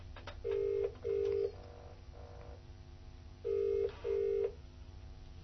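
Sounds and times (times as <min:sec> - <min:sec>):
telephone ringback tones on an outgoing call: 0:00.5 - 0:02.6, 0:03.4 - 0:04.5.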